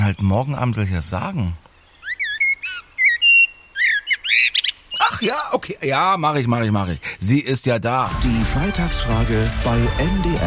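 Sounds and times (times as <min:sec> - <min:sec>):
blackbird singing fluting whistles: 0:00.0 - 0:05.8
speech: 0:00.1 - 0:01.7, 0:05.2 - 0:10.4.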